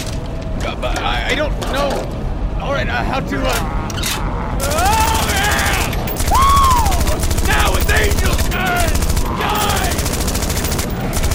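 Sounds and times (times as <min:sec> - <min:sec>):
speech: 0:00.7 - 0:05.0
rifle gunfire in a rapid continuous burst: 0:04.6 - 0:11.3.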